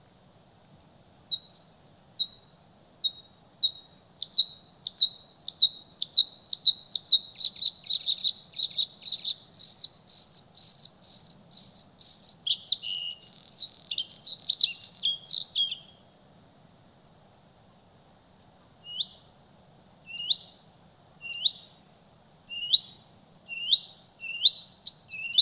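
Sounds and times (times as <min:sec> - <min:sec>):
bluethroat song with ringing repeated notes and scratchy twittering: 0:01.3 - 0:01.6, 0:02.2 - 0:16.1, 0:18.8 - 0:19.3, 0:20.1 - 0:20.6, 0:21.2 - 0:21.8, 0:22.5 - 0:25.4.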